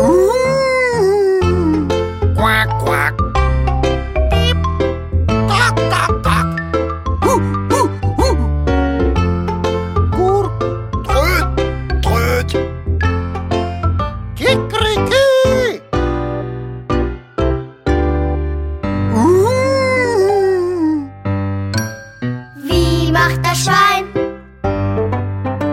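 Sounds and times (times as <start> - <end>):
person imitating wolf howling: 0.0 - 1.9, 7.2 - 8.5, 19.1 - 21.1
busy musical backing: 0.0 - 25.7.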